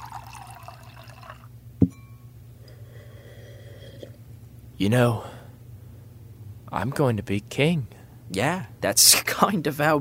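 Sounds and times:
water pouring into a glass for a drink: 0.0s - 1.5s
faint hum: 0.0s - 9.9s
speech: 4.8s - 5.3s, 6.7s - 9.9s.

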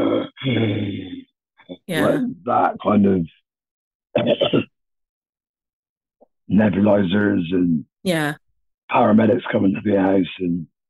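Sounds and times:
speech: 0.4s - 1.1s, 1.9s - 3.4s, 4.2s - 4.7s, 6.5s - 10.7s
person vocally imitating their own croup cough: 4.2s - 4.7s.

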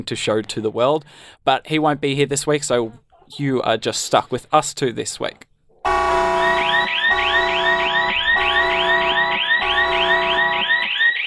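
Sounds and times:
speech: 0.0s - 5.5s
alarm sound effect with rapid rising electronic sweeps: 5.8s - 11.2s.

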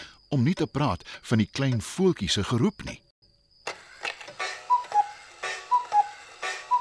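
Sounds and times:
clock ticking: 0.2s - 3.0s, 4.4s - 6.7s
speech: 0.3s - 3.0s.

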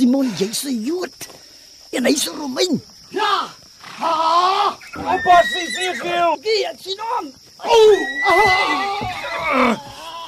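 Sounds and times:
speech: 0.0s - 10.0s
horse neighing: 3.8s - 6.2s, 7.7s - 10.2s.

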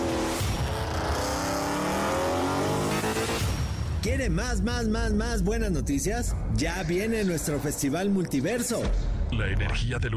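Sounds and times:
car driving by with engine revving: 0.0s - 3.7s
speech: 4.1s - 10.1s.

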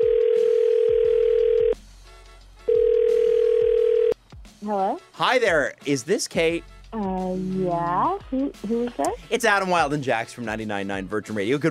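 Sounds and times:
telephone dial tone: 0.0s - 1.8s, 2.7s - 4.2s
speech: 4.7s - 11.7s.

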